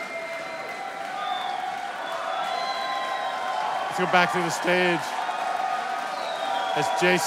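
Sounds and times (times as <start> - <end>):
large concert crowd clapping: 0.0 - 7.2
speech: 4.0 - 5.2, 6.8 - 7.2.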